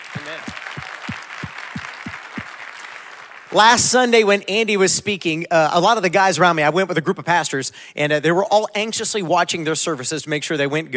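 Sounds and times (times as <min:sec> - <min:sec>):
crowd applauding: 0:00.0 - 0:04.0
speech: 0:00.3 - 0:00.7, 0:03.5 - 0:10.9.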